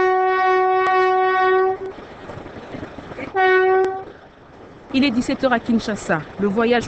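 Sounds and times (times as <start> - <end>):
urban passenger train horn blast: 0.0 - 2.0, 3.2 - 4.2
rumbling rail noise of urban passenger train leaving a station: 0.0 - 6.8
speech: 5.0 - 6.8.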